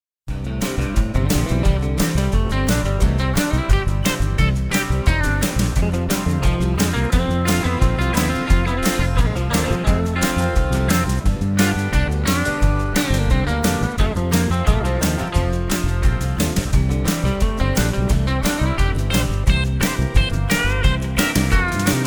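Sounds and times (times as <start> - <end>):
Western rock band playing: 0.3 - 22.0.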